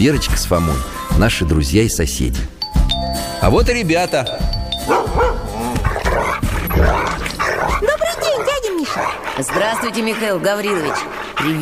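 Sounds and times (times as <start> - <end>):
speech: 0.0 - 2.6, 3.4 - 5.3, 9.4 - 11.6
dog barking and yipping: 4.7 - 11.6.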